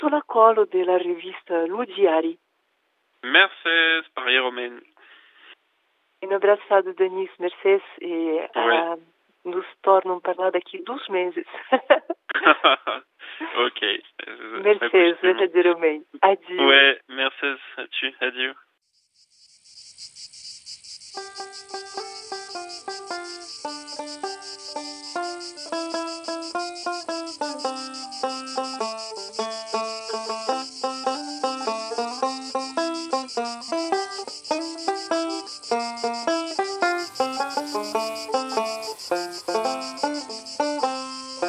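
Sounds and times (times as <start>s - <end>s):
speech: 0.0s - 2.4s, 3.2s - 4.9s, 6.2s - 18.6s
cicadas chirping: 18.8s - 41.4s.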